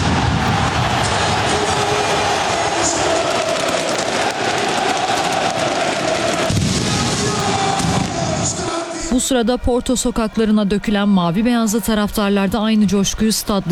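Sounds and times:
fireworks at a stadium crackling and popping to celebrate a championship win: 0.0 - 8.6
speech: 9.3 - 13.6.

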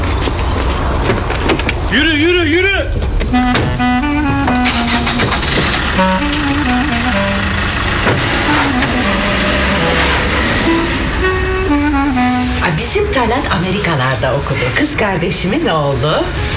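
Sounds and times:
car engine turning over and revving: 0.0 - 16.5
speech: 1.9 - 3.9, 12.9 - 16.4.

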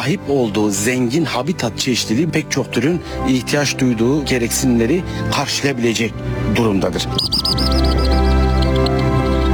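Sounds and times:
speech: 0.0 - 8.1
steady low tonal background: 0.0 - 9.5
migratory birds chirping while feeding at a pond in wetlands: 6.9 - 9.5.

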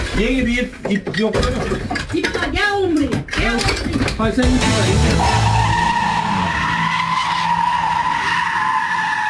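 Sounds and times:
speech: 0.2 - 5.5
low car engine rumble: 4.5 - 6.4
car tires squealing while drifting on a street: 4.5 - 9.2.

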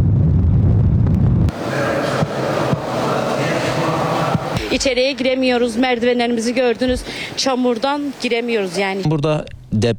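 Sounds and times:
strong storm wind gusts roaring in Gaziantep southeastern Turkey: 0.0 - 5.1
laughter: 1.5 - 7.1
speech: 4.8 - 9.9.

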